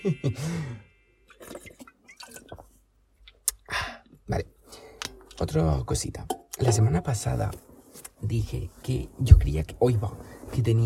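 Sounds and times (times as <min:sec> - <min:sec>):
laughter: 0:00.0 - 0:00.7
speech: 0:00.0 - 0:00.8, 0:05.4 - 0:10.8
breathy exhale: 0:00.4 - 0:00.9
person sipping and swallowing water: 0:01.3 - 0:03.7.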